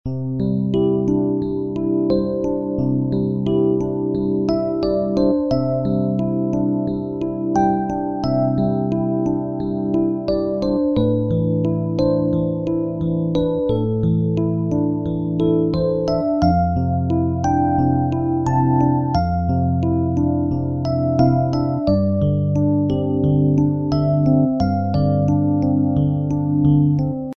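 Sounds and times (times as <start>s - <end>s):
background music: 0.1s - 27.3s.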